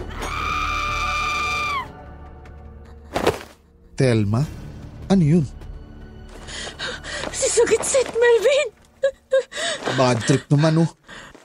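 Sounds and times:
woman screaming loudly: 0.1s - 1.9s
speech: 4.0s - 5.6s, 7.6s - 8.8s, 9.9s - 11.0s.

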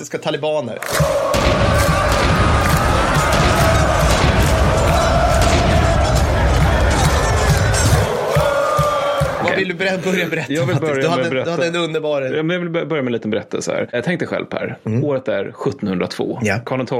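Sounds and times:
speech: 0.0s - 2.0s, 9.6s - 16.9s
packed supporters' section chanting, roaring and shouting: 0.8s - 9.9s
drum-like thuds: 1.0s - 9.6s.

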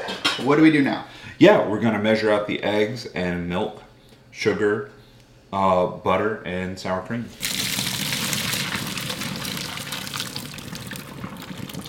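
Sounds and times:
speech: 0.4s - 7.6s
cold tap water running over cooked noodles in a colander: 7.4s - 11.8s.

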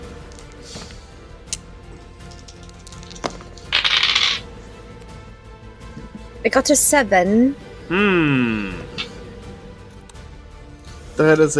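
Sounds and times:
dice clattering onto a hard surface: 0.3s - 0.6s, 1.5s - 4.4s
speech: 6.4s - 8.9s, 11.2s - 11.5s.

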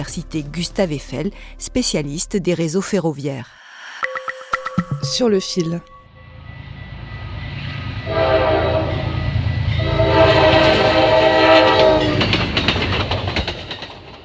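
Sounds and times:
speech: 0.0s - 3.6s, 5.0s - 6.0s
American train rumbling past: 5.4s - 14.2s
train horn blasts: 6.1s - 12.3s
rattling of train cars: 6.6s - 14.2s.

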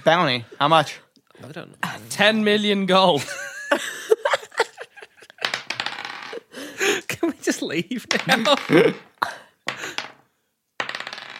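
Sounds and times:
speech: 0.0s - 4.1s, 7.2s - 9.1s
laughter: 3.2s - 5.5s, 8.0s - 9.4s
dice rattling on a hard surface: 5.4s - 6.3s, 9.7s - 10.2s, 10.8s - 11.3s.

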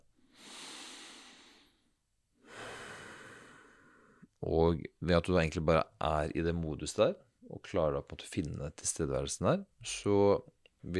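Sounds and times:
slow deliberate breathing of a person with eyes closed: 0.1s - 4.3s
speech: 4.4s - 10.9s.

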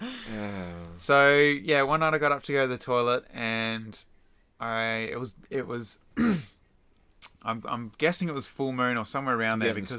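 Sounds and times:
speech: 1.0s - 6.5s, 7.4s - 9.9s
throat clearing: 6.2s - 6.6s.

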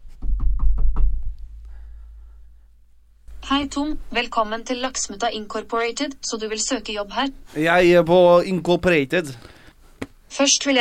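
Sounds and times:
knocking on a door: 0.0s - 1.4s
low hum: 0.9s - 7.5s
speech: 3.5s - 9.5s, 10.3s - 10.7s.

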